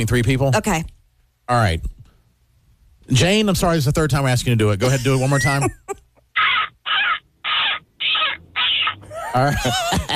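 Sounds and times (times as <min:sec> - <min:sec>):
speech: 0:00.0 - 0:02.0, 0:03.1 - 0:06.5, 0:09.3 - 0:10.1
person imitating a seagull with harsh squawks for a seagull calling contest: 0:06.3 - 0:09.7
laughter: 0:08.8 - 0:10.1.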